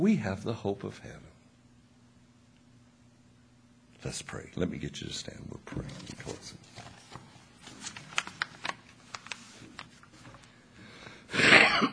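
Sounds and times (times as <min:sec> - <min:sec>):
speech: 0:00.0 - 0:01.3, 0:04.0 - 0:06.9
soft rustles: 0:05.8 - 0:10.6
throat clearing: 0:11.4 - 0:11.9.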